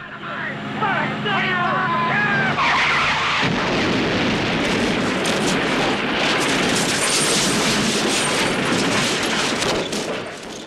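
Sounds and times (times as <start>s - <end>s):
Trans Am engine whining at high pitch while reversing: 0.6s - 3.7s
dense crackling and rumbling after an explosion: 2.5s - 10.6s
loud sustained dynamite explosion blasting a car to pieces: 2.8s - 10.6s.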